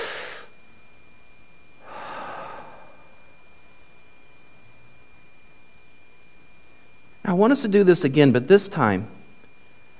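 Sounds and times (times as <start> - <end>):
group of people taking a big breath and breathing out: 0.0 - 0.6, 1.8 - 3.4
speech: 7.4 - 9.2.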